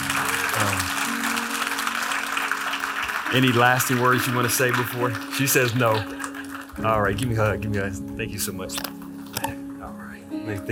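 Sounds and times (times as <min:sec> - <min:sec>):
crowd clapping in a large room: 0:00.0 - 0:07.8
speech: 0:03.3 - 0:09.0, 0:10.5 - 0:10.7.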